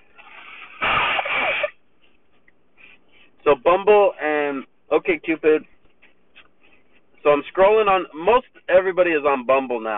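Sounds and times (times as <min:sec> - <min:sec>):
person blowing nose: 0:00.2 - 0:01.8
speech: 0:03.5 - 0:05.7, 0:07.2 - 0:09.9.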